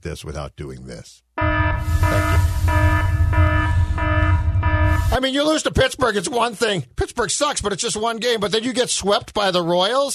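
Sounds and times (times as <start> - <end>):
speech: 0.0 - 3.5, 5.0 - 10.1
loud buzzing alarm: 1.4 - 5.2
low rumbling background: 1.7 - 5.2.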